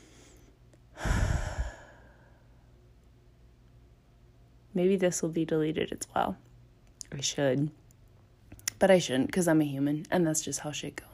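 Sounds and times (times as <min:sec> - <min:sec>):
person taking a deep breath: 0:00.0 - 0:02.5
speech: 0:04.8 - 0:06.5, 0:07.1 - 0:07.8, 0:08.8 - 0:11.1.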